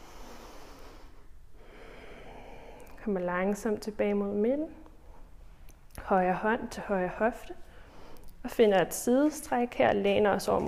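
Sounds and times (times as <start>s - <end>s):
deep breath during a stretching exercise: 0.0s - 3.0s, 7.6s - 8.3s
speech: 3.0s - 4.8s, 6.1s - 7.6s, 8.4s - 10.6s.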